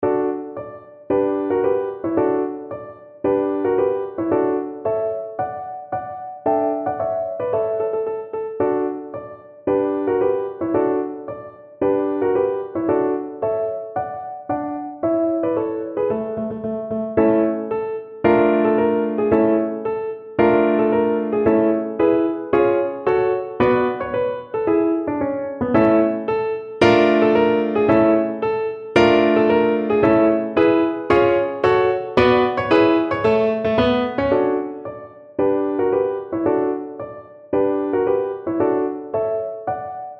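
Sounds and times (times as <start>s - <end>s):
piano: 0.0s - 40.1s.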